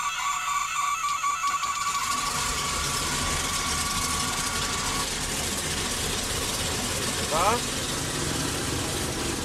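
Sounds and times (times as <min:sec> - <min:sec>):
thin whining tone: 0:00.0 - 0:06.2
aircraft piston engine idling: 0:01.6 - 0:09.4.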